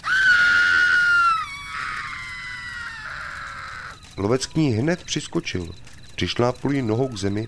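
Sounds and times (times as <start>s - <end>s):
witch screaming as she falls: 0.0s - 4.0s
speech: 4.2s - 7.4s.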